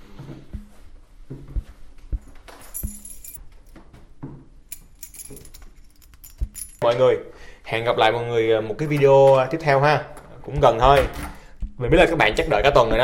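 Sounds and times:
steady noise: 0:00.0 - 0:13.0
keys jangling in a hotel during a stair search: 0:02.5 - 0:03.4, 0:04.7 - 0:06.8
speech: 0:06.8 - 0:13.0.

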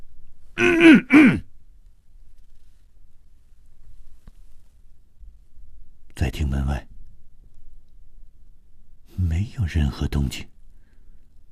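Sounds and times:
man giving a short voiced throaty cough: 0:00.6 - 0:01.4
speech: 0:00.6 - 0:01.4, 0:09.6 - 0:10.6.

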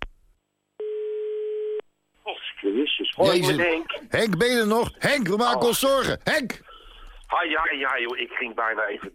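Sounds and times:
long steady telephone tone: 0:00.8 - 0:01.9
speech: 0:03.0 - 0:06.6, 0:07.3 - 0:09.1.

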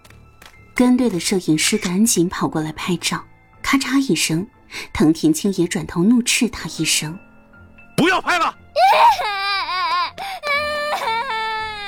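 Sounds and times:
speech: 0:00.8 - 0:07.3, 0:08.0 - 0:09.4
frightened child wailing loudly: 0:08.8 - 0:11.8.

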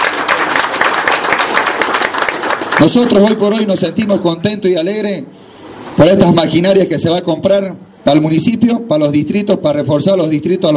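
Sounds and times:
audience applause for an engineer and the mayor at a municipal event: 0:00.0 - 0:03.7
speech: 0:02.8 - 0:05.4, 0:06.0 - 0:10.7.

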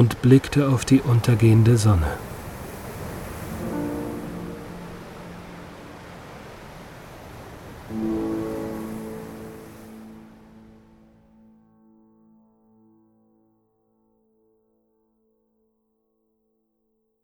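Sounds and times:
speech: 0:00.0 - 0:02.3
ocean waves washing at the foot of cliffs: 0:00.0 - 0:11.4.

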